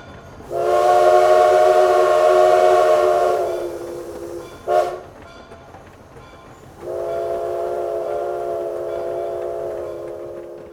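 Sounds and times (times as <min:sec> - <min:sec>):
train horn blasts at a station coming out of a tunnel: 0:00.5 - 0:05.1, 0:06.8 - 0:10.7.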